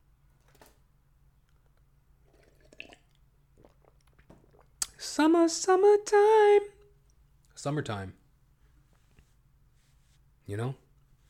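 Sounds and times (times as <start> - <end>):
sipping and swallowing water: 1.4 - 5.1
speech: 5.1 - 6.8, 7.6 - 8.2, 10.5 - 10.8.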